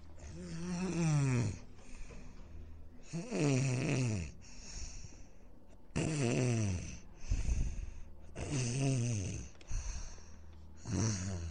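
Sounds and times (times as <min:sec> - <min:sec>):
man snoring loudly: 0:00.2 - 0:01.6, 0:03.0 - 0:04.4, 0:05.9 - 0:07.8, 0:08.4 - 0:09.5, 0:10.8 - 0:11.4.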